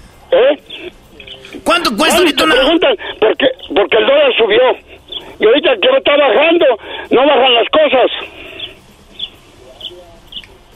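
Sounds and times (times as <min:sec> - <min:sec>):
low hum: 0:00.0 - 0:10.7
speech: 0:01.8 - 0:08.4
small birds chirping: 0:05.0 - 0:05.4, 0:08.2 - 0:10.7.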